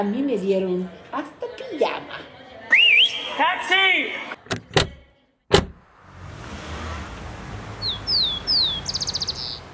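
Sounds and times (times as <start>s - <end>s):
speech: 0.0s - 2.3s, 3.1s - 4.4s
sharp knock: 4.5s - 5.8s
rufous-collared sparrow singing in Santiago: 7.8s - 9.7s.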